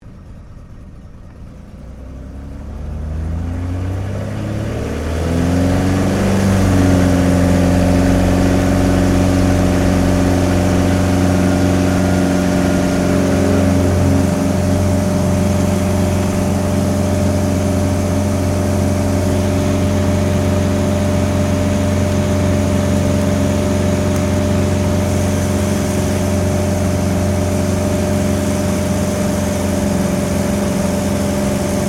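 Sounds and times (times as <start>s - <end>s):
CT4A military trainer aircraft taking off, heard from the interior: 0.0s - 31.8s.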